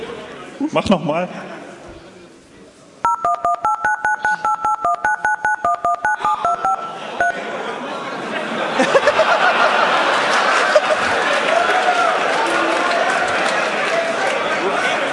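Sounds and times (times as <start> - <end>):
people chattering: 0.0 - 15.1
speech: 0.6 - 1.6
telephone keypad DTMF dialing tones: 3.0 - 7.4
laughter: 7.0 - 11.5.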